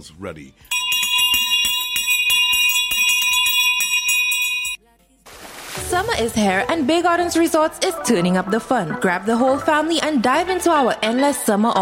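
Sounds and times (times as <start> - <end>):
speech: 0.0 - 0.8, 5.9 - 11.8
loud electric school bell ringing: 0.7 - 4.8.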